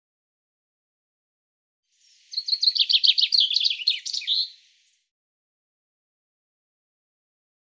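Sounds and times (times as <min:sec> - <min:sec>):
common chaffinch singing: 0:02.0 - 0:05.1.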